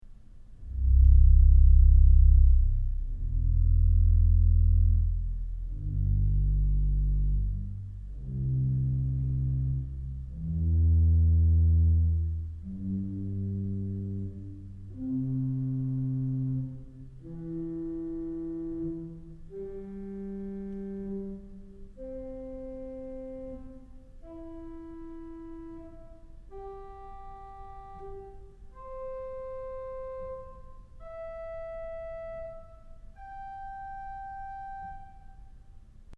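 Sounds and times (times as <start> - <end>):
double bass playing in an auditorium: 0.6 - 32.5.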